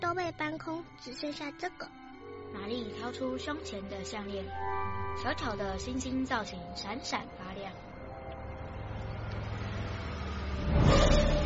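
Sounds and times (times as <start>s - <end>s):
speech: 0.3s - 7.9s
car engine humming outside the window: 5.7s - 11.4s.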